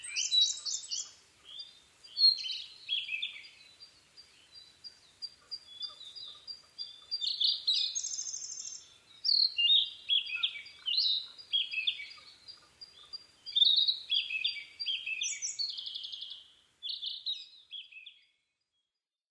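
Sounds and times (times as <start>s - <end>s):
Narcissus flycatcher song: 0.0s - 18.2s.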